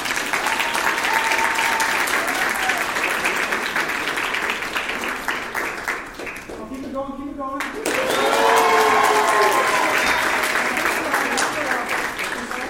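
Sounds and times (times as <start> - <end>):
crowd applauding with dense continuous clapping: 0.0 - 12.6
cheering and whoops: 0.4 - 3.0, 7.9 - 10.5.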